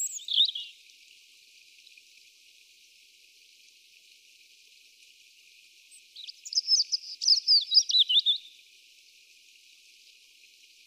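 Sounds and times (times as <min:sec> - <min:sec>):
European robin Erithacus rubecula twittering and warbling: 0:00.0 - 0:00.7, 0:06.2 - 0:08.5.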